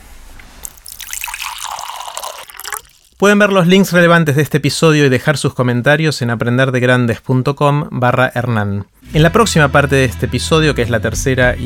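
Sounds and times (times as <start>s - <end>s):
water pouring into a glass for drinking: 0.6s - 4.6s
speech: 3.2s - 11.6s.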